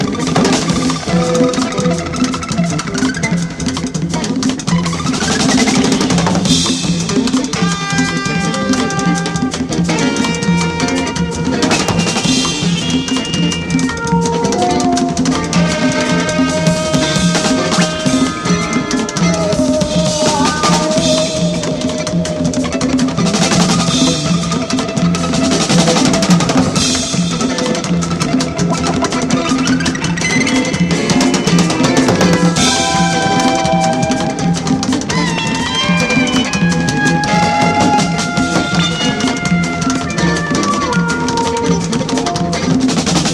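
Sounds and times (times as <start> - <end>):
air harp: 0.1 - 43.1.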